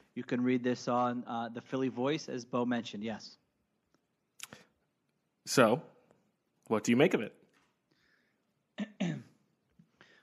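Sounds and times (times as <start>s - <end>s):
speech: 0.2s - 3.4s, 5.5s - 5.9s, 6.7s - 7.4s, 8.8s - 9.2s
loud harsh throat-clearing cough: 8.8s - 9.4s.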